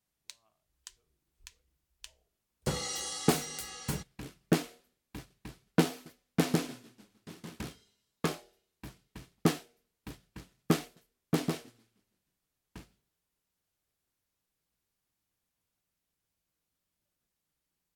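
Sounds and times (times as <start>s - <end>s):
compressed snare drum recorded from bottom: 2.7s - 11.8s.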